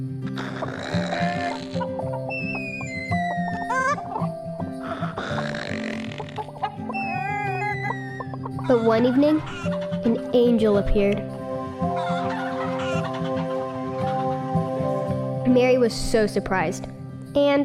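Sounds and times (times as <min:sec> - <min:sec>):
steady musical drone: 0:00.0 - 0:16.8
flock of chickens clucking and squawking: 0:00.4 - 0:10.2, 0:11.9 - 0:14.8
speech: 0:08.7 - 0:11.4, 0:15.6 - 0:17.6.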